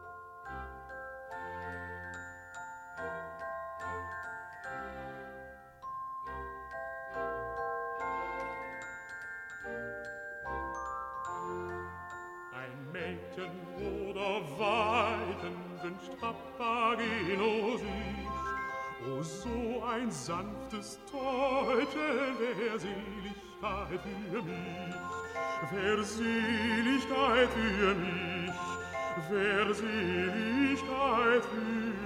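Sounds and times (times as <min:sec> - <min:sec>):
magic bells chiming a melody in an opera recording: 0:00.0 - 0:13.9, 0:17.0 - 0:20.1, 0:24.1 - 0:32.0
orchestral accompaniment in an opera recording: 0:00.0 - 0:32.0
speech: 0:13.4 - 0:18.3, 0:19.0 - 0:28.7, 0:29.3 - 0:31.8.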